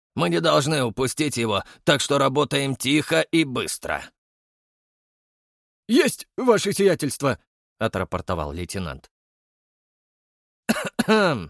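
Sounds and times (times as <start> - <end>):
speech: 0.2 - 4.2, 5.9 - 9.1, 10.7 - 11.4
man coughing into his fist: 10.7 - 11.4.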